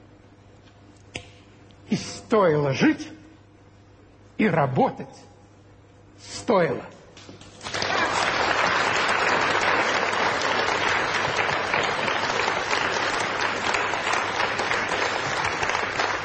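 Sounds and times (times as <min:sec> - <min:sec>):
speech: 0:01.9 - 0:03.2, 0:04.4 - 0:05.3, 0:06.4 - 0:07.0
audience applause: 0:07.6 - 0:16.2.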